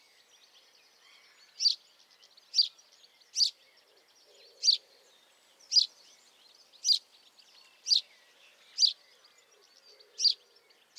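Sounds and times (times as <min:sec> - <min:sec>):
house sparrow chirping: 0:01.0 - 0:01.8, 0:02.4 - 0:03.6, 0:05.6 - 0:06.0, 0:06.6 - 0:09.1, 0:09.9 - 0:10.9.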